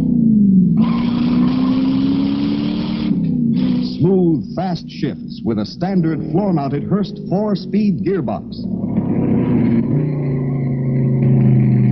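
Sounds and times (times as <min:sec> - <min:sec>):
383 cubic inch 335 horsepower wedge V8 engine of 1969 Plymouth Roadrunner revving: 0:00.0 - 0:11.9
speech: 0:04.5 - 0:08.8.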